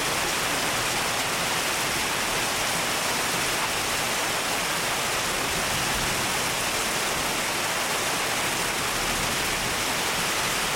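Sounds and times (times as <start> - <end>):
rain pouring: 0.0 - 10.7.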